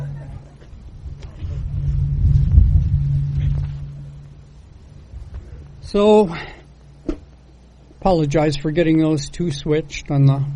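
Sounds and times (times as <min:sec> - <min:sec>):
steady low hum: 0:00.0 - 0:10.5
traffic including motorcycles rumbling past: 0:00.0 - 0:10.5
outdoor wind buffeting the microphone: 0:00.7 - 0:05.9
speech: 0:05.9 - 0:06.6, 0:08.0 - 0:10.5.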